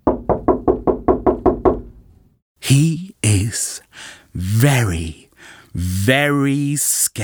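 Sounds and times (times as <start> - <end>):
knocking on a door: 0.0 - 2.0
speech: 2.7 - 7.2.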